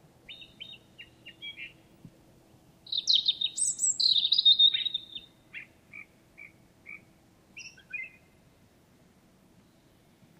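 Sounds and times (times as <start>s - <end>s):
European robin Erithacus rubecula singing: 0.2s - 2.0s, 2.8s - 8.6s.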